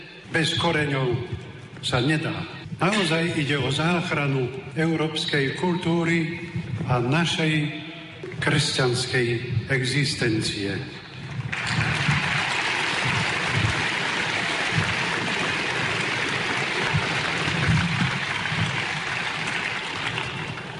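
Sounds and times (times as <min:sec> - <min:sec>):
speech: 0:00.3 - 0:07.8, 0:08.4 - 0:11.0
large audience applauding: 0:11.3 - 0:20.7.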